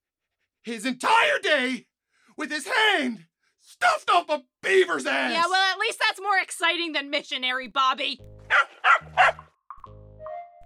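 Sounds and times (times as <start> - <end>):
speech: 0.6 - 9.4
dog barking: 8.5 - 9.5.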